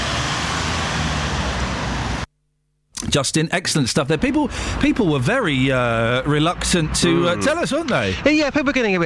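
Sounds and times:
broad wash of road noise: 0.0s - 2.3s, 4.2s - 9.0s
cars moving around a car park: 0.0s - 2.3s, 4.4s - 8.4s
speech: 3.1s - 9.0s.

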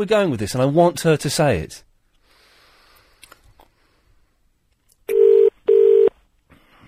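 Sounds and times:
speech: 0.0s - 1.9s
telephone call tones: 5.1s - 6.2s.

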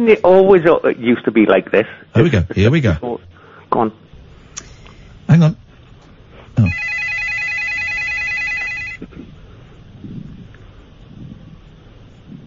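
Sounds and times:
speech: 0.0s - 4.1s, 5.3s - 5.6s
telephone bell ringing: 6.6s - 9.0s.

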